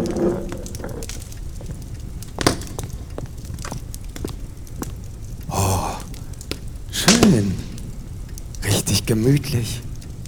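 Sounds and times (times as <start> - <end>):
fireplace fire crackling: 0.0 - 10.2
sharp pops and snaps of fireplace fire: 0.0 - 10.2
speech: 9.1 - 10.0.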